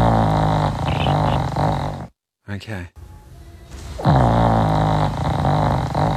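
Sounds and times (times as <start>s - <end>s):
loud rattling snore: 0.0s - 2.2s, 4.0s - 6.1s
speech: 2.6s - 3.0s.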